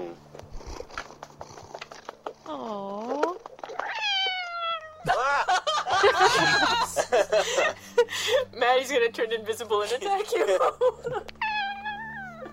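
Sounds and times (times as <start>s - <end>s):
cat yowling as it is patted on its bottom: 3.7s - 5.1s, 11.4s - 12.5s
laughter: 5.0s - 8.5s, 10.2s - 11.3s
speech: 8.7s - 11.4s.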